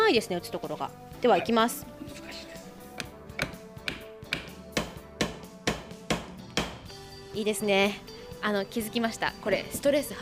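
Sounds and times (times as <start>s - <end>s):
speech: 0.1s - 2.6s, 7.4s - 10.2s
hammer driving nails into a wooden chair seat board: 3.0s - 6.9s.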